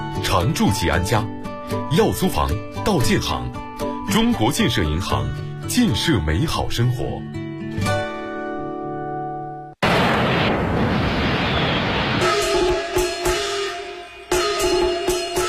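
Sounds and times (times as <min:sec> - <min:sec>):
music: 0:00.0 - 0:09.8, 0:12.4 - 0:15.4
speech: 0:00.3 - 0:07.9
fireworks and firecrackers bursting at Spring Festival: 0:09.8 - 0:14.2.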